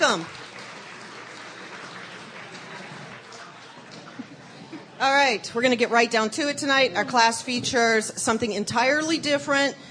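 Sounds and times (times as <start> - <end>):
audience applause: 0.0 - 4.7
speech: 0.1 - 0.4, 5.0 - 9.8.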